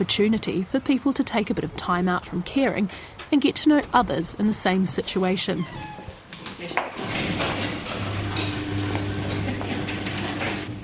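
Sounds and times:
speech: 0.0s - 6.0s
electric garage door at a suburban home rolling up: 5.6s - 10.8s.

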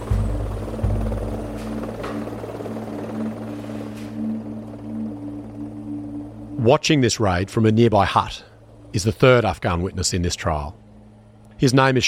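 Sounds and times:
helicopters thrumming with deep droning rotor hum: 0.0s - 12.0s
speech: 6.6s - 10.8s, 11.6s - 12.0s.

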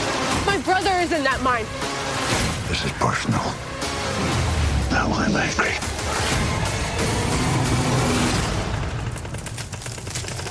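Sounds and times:
speech: 0.6s - 4.4s, 5.0s - 7.2s
heavy trucks with engines droning and revving: 6.0s - 9.1s
rapid series of sharp cracking bursts: 7.2s - 10.4s.

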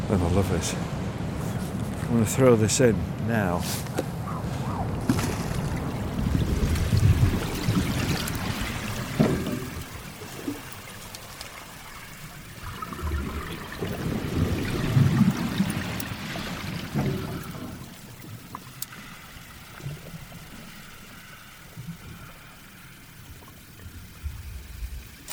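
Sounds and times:
speech: 0.1s - 1.0s, 2.1s - 4.1s
underwater swish of tidal waters heard through a hydrophone: 3.6s - 25.3s.

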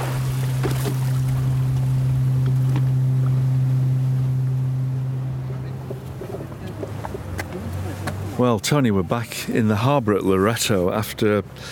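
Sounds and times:
boat hull slapping against waves: 0.0s - 9.6s
boat engine droning in rough seas: 0.0s - 11.7s
rushing water: 0.0s - 11.7s
speech: 8.4s - 11.7s.

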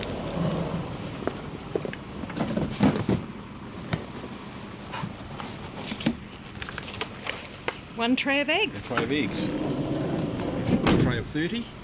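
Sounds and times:
van sliding door rumbling along its track and thudding shut: 0.0s - 3.3s, 8.9s - 11.4s
steady outdoor noise: 0.0s - 11.8s
speech: 8.0s - 9.7s, 11.3s - 11.8s.

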